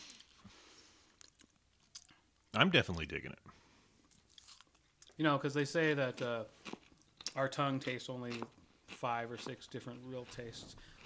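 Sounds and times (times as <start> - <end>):
chewing ginger-flavored food: 1.1 - 2.2, 4.0 - 5.2, 6.1 - 11.0
speech: 2.6 - 3.6, 5.2 - 6.8, 7.4 - 11.0.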